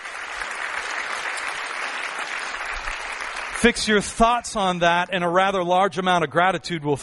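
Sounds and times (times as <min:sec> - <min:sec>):
crowd clapping: 0:00.0 - 0:05.2
speech: 0:03.6 - 0:07.0.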